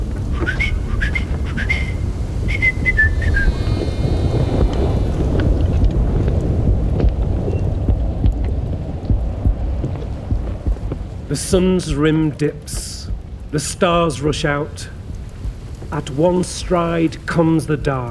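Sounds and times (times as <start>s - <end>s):
heavy roar of wind: 0.0s - 18.0s
short shrill whistles: 0.3s - 4.7s
speech: 11.5s - 12.8s, 13.5s - 15.0s, 15.9s - 18.0s.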